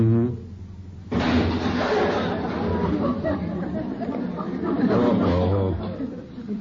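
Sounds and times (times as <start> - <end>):
car fender crashing into garage: 1.1 - 2.9
laughter: 1.9 - 6.5.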